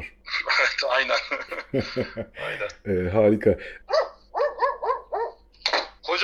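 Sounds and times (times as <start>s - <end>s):
laughter: 0.3s - 2.8s
speech: 0.8s - 4.0s
large dog barking: 3.9s - 5.5s.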